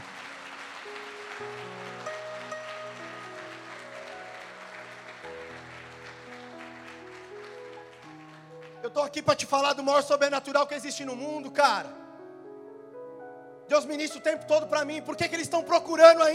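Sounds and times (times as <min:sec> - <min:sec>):
audience applauding loudly: 0:00.0 - 0:10.5
sustained keyboard chords: 0:00.9 - 0:16.3
speech: 0:08.9 - 0:12.0, 0:13.7 - 0:16.3.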